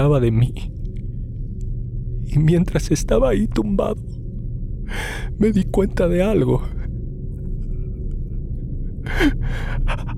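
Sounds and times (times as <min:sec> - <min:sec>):
speech: 0:00.0 - 0:00.8, 0:02.3 - 0:04.2, 0:04.9 - 0:06.8, 0:09.2 - 0:10.1
low steady rumble: 0:00.0 - 0:10.1
heavy agitated panting breaths: 0:09.1 - 0:10.1.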